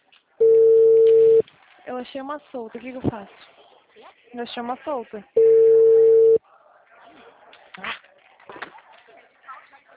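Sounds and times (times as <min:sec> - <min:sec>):
telephone ringback tone while placing a call: 0:00.4 - 0:01.4, 0:05.4 - 0:06.4
speech: 0:02.0 - 0:05.8.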